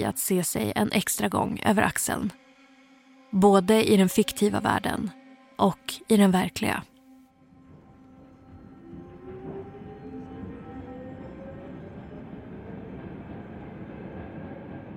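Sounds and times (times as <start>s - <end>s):
speech: 0.0s - 2.4s, 3.3s - 6.9s
subway train rolling with a heavy steady rumble: 7.4s - 14.9s
subway train wheels squealing on the rails: 8.1s - 14.9s.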